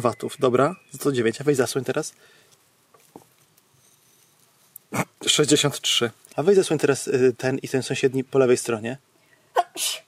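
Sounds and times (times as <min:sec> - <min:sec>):
speech: 0:00.0 - 0:02.4, 0:05.0 - 0:09.1, 0:09.8 - 0:10.0
person sneezing: 0:04.9 - 0:05.2, 0:09.6 - 0:10.0.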